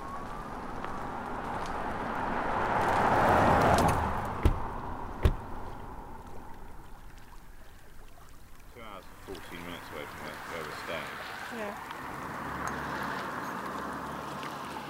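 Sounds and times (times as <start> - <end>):
water lapping against a loch shore: 0.0 - 14.8
sharp knocks: 4.4 - 5.6.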